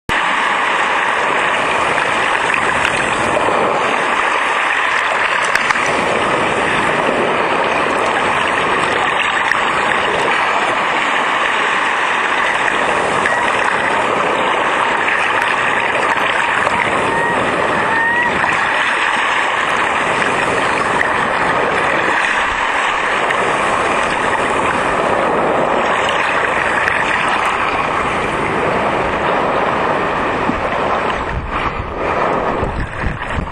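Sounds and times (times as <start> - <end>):
surf at Newcastle Island off the coast of New Hampshire: 0.0 - 33.5.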